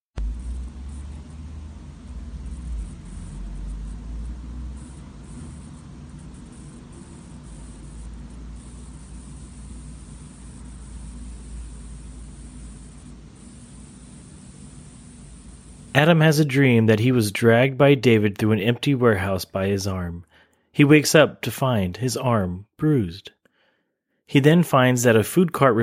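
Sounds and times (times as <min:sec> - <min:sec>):
static hiss: 0:00.2 - 0:16.8
speech: 0:16.0 - 0:23.4, 0:24.3 - 0:25.8.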